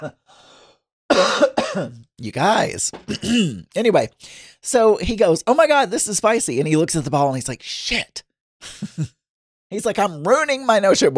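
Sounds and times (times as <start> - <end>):
speech: 0.0 - 0.6, 1.2 - 11.1
breathing: 0.3 - 0.9, 4.2 - 4.6
harsh cough: 1.1 - 2.0, 3.1 - 3.6.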